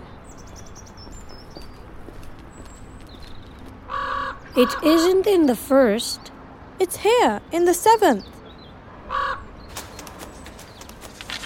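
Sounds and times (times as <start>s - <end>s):
raven cawing: 3.9s - 4.8s, 9.0s - 9.5s
speech: 4.6s - 8.3s
rustling: 9.7s - 11.4s.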